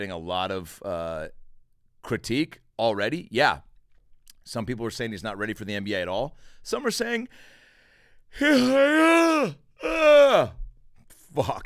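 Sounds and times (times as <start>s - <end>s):
speech: 0.0s - 1.4s, 2.0s - 3.7s, 4.4s - 7.6s, 8.3s - 10.6s, 11.3s - 11.6s
big yawn: 8.3s - 10.6s.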